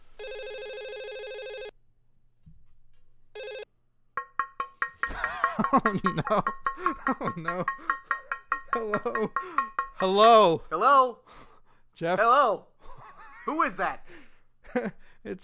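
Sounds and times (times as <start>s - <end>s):
outgoing call ringback tone: 0.2s - 1.7s, 3.4s - 3.7s
laughter: 5.1s - 7.8s, 8.7s - 9.4s
speech: 5.6s - 8.0s, 8.7s - 12.7s, 13.5s - 14.2s, 14.8s - 15.4s.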